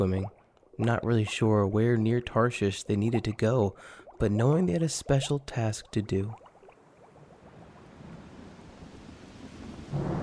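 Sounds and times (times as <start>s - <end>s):
speech: 0.0s - 6.4s
steady rain: 7.1s - 10.2s
low rumbling storm noise and roll of thunder: 7.4s - 10.2s.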